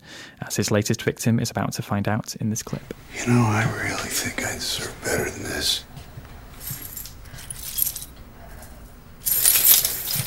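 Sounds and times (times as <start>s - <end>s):
speech: 0.4s - 6.0s
metal keys jingling: 6.6s - 10.2s.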